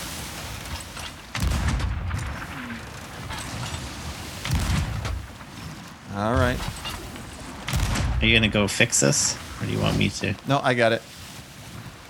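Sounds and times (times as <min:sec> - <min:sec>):
deep booming gunfire blasts from enemy ship in a naval battle video game: 0:00.4 - 0:10.0
speech: 0:06.2 - 0:06.9, 0:08.2 - 0:11.2.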